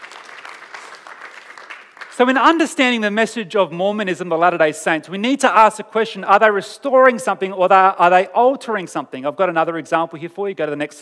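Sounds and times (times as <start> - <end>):
crowd applauding: 0.0 - 2.5
speech: 2.2 - 11.0.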